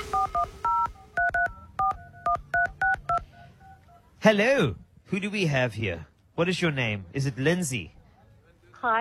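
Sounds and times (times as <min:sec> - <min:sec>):
telephone keypad dialing tones: 0:00.1 - 0:04.0
speech: 0:04.3 - 0:08.0.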